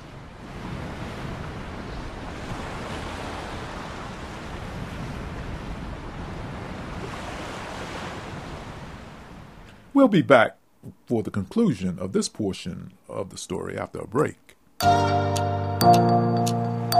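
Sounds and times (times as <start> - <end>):
wind rush: 0.0 - 9.6
ocean waves washing and roaring: 0.0 - 10.1
speech: 10.0 - 16.6.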